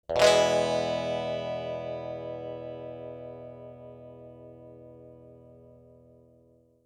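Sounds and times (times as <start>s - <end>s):
guitar strum with cocked wah pedal: 0.1s - 6.6s.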